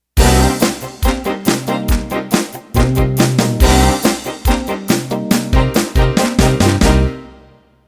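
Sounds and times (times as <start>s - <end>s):
country boogie music ending: 0.2s - 7.5s.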